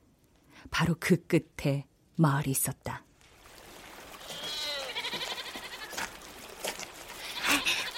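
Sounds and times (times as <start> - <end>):
speech: 0.8 - 3.1
black goat bleating: 4.2 - 6.1, 7.2 - 7.9.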